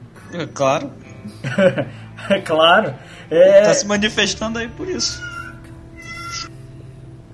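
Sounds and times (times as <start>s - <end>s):
steady low hum: 0.0s - 7.3s
speech: 0.3s - 5.3s
laughter: 1.2s - 2.5s
cat meowing: 5.0s - 6.6s.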